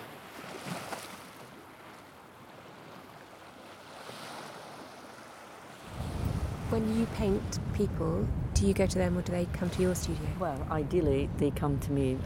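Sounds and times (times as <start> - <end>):
sea waves breaking on a beach: 0.0 - 12.2
wind noise: 5.8 - 12.2
speech: 6.8 - 12.2.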